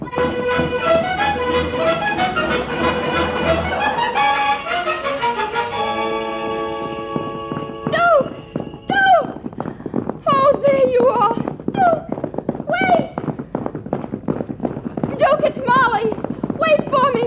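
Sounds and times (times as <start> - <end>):
horse hooves clip-clopping: 0.0 - 17.2.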